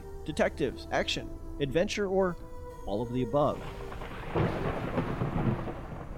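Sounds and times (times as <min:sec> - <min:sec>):
speech: 0:00.2 - 0:04.7
low rolling thunder: 0:03.6 - 0:06.1
steady rain hissing: 0:03.6 - 0:06.1.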